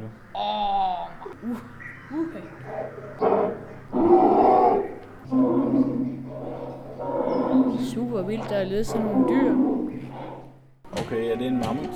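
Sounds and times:
steady low electrical hum: 0:00.0 - 0:11.9
cave bear roaring: 0:02.6 - 0:11.9
speech: 0:08.0 - 0:09.7, 0:11.1 - 0:11.9.

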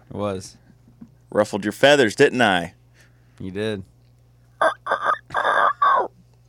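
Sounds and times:
speech: 0:00.1 - 0:00.7, 0:01.3 - 0:02.8, 0:03.4 - 0:03.9
person imitating a rooster crow: 0:04.6 - 0:06.1.

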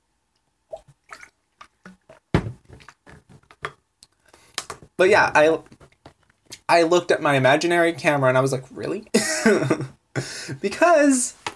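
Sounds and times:
sipping and gulping water: 0:00.7 - 0:04.9
speech: 0:05.0 - 0:05.7, 0:06.7 - 0:09.9, 0:10.6 - 0:11.4.

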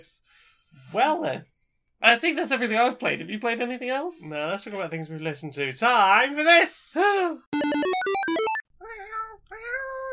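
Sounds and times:
speech: 0:00.0 - 0:07.9
bright electronic jingle of stepped notes: 0:07.6 - 0:08.6.

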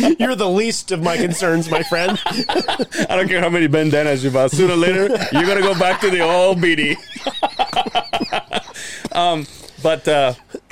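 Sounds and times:
speech: 0:00.2 - 0:10.7
laughter: 0:00.9 - 0:10.7
strained wheezy gasps: 0:08.7 - 0:10.7
harsh coughs: 0:10.5 - 0:10.7.

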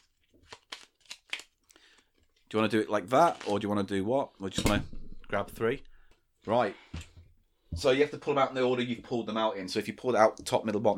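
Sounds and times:
cards being shuffled with papery riffles: 0:00.0 - 0:02.0, 0:03.2 - 0:03.7
speech: 0:02.5 - 0:07.0, 0:07.8 - 0:10.9.

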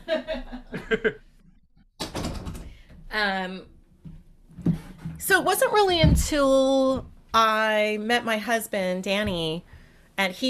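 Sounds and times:
laughter: 0:00.0 - 0:01.2
speech: 0:00.9 - 0:01.2, 0:03.1 - 0:03.7, 0:05.3 - 0:10.4
door creaking as it is pulled shut: 0:02.0 - 0:02.8.

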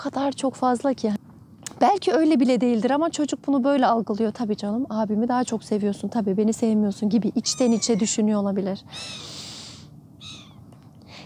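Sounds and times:
speech: 0:00.0 - 0:09.5
birds calling: 0:06.9 - 0:11.2.

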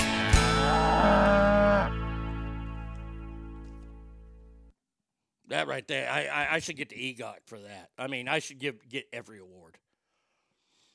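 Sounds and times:
cow mooing: 0:00.7 - 0:02.0
speech: 0:05.5 - 0:09.8.

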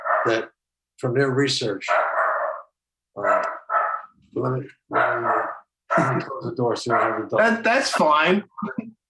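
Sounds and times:
dog barking: 0:00.0 - 0:00.5, 0:01.8 - 0:04.2, 0:04.9 - 0:06.2, 0:06.9 - 0:08.2
speech: 0:00.2 - 0:02.0, 0:04.4 - 0:08.9.

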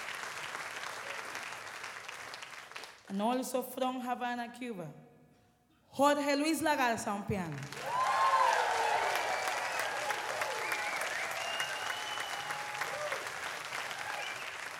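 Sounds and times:
large audience applauding after a live concert: 0:00.0 - 0:03.0, 0:07.7 - 0:14.7
speech: 0:03.1 - 0:05.0, 0:06.0 - 0:07.9
whoops and cheers from the audience: 0:07.8 - 0:14.7.

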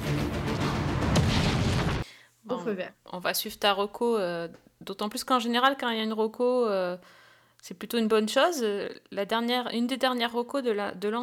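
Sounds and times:
power plant explosion in a film scene: 0:00.0 - 0:02.0
speech: 0:02.6 - 0:11.2.

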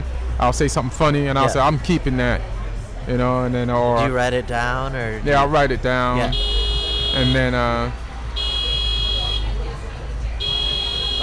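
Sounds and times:
speech: 0:00.4 - 0:02.5, 0:03.1 - 0:06.5, 0:07.1 - 0:08.0
electronic alarm buzzer: 0:06.3 - 0:07.4, 0:08.4 - 0:09.4, 0:10.4 - 0:11.2.

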